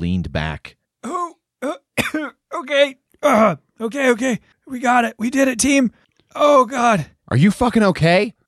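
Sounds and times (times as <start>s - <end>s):
speech: 0.0s - 0.8s, 2.7s - 8.4s
person coughing up water after drowning: 1.1s - 2.6s.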